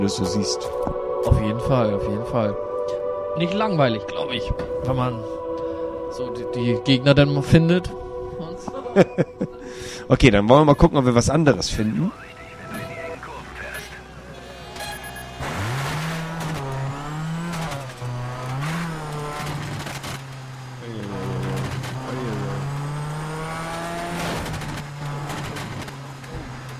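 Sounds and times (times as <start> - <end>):
speech: 0.0 - 5.4, 6.1 - 8.0, 8.6 - 12.4
laughter: 8.7 - 10.0
rally car engine revving in a racing video game: 11.7 - 26.7.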